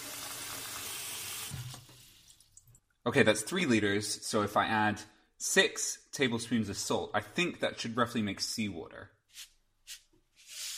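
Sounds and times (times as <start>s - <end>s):
water rushing from a tap into a large pot: 0.0s - 2.8s
speech: 3.1s - 9.5s.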